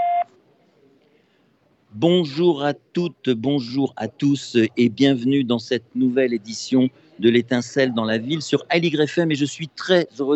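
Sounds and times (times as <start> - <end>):
loud electronic voicemail beep: 0.0 - 0.3
faint low murmur: 0.0 - 10.3
speech: 2.0 - 10.3.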